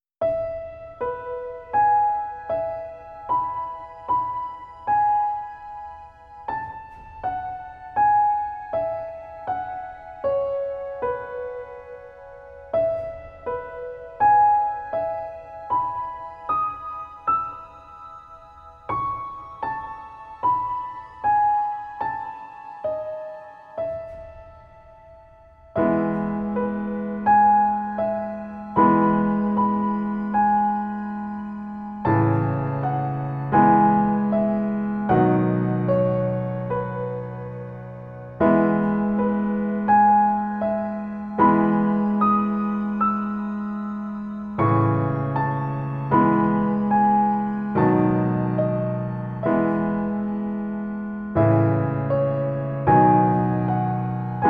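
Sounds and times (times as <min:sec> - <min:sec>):
calming piano music: 0:00.2 - 0:54.4.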